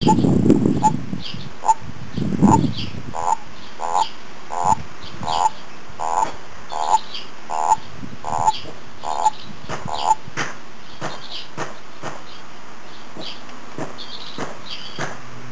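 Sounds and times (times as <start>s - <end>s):
Bufo bufo calling: 0.0s - 10.3s.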